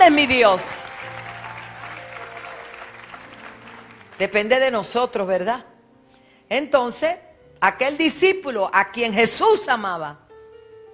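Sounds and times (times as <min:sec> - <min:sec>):
speech: 0:00.0 - 0:01.0, 0:04.2 - 0:05.7, 0:06.5 - 0:10.2
church congregation clapping in praise: 0:00.0 - 0:04.7.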